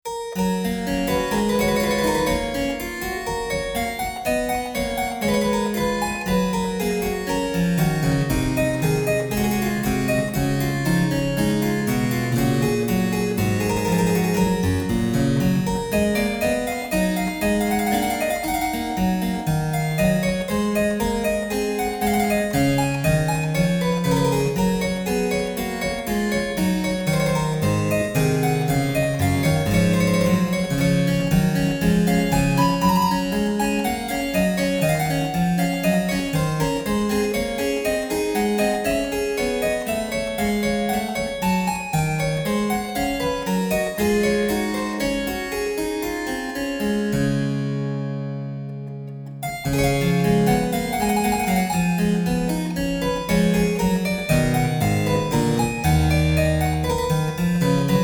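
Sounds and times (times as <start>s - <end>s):
Flemish harpsichord: 0.1s - 58.0s.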